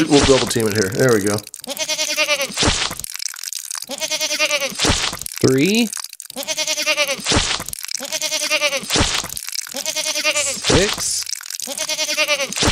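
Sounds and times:
speech: 0.0 - 1.9, 5.4 - 6.1, 10.8 - 11.1
crunching and snapping noises: 0.0 - 12.6
goats bleating: 1.6 - 2.6, 3.9 - 4.8, 6.3 - 7.3, 8.0 - 9.0, 9.7 - 10.7, 11.6 - 12.6.

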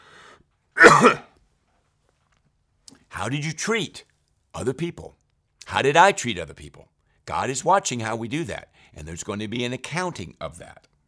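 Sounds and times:
person coughing: 0.8 - 1.2
speech: 1.0 - 1.2, 3.2 - 10.9.

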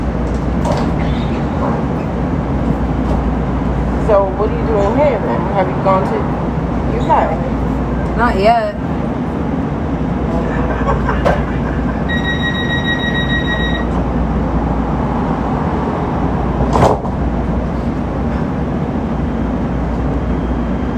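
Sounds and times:
light rail train running heard from inside: 0.0 - 20.9
speech: 4.1 - 7.6, 8.2 - 8.9
laughter: 10.3 - 12.1
high electronic tones: 12.1 - 14.0.

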